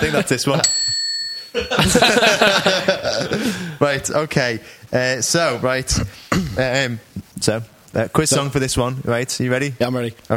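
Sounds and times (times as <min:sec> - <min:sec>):
laughter: 0:00.0 - 0:00.6, 0:01.5 - 0:03.8
speech: 0:00.0 - 0:00.9, 0:01.5 - 0:10.3
bright shop-door bell ringing: 0:00.6 - 0:01.6.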